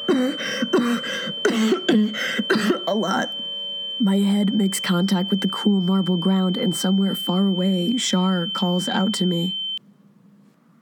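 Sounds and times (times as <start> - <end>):
person coughing in harsh rasping bursts: 0.0 - 3.2
speech: 3.0 - 9.6.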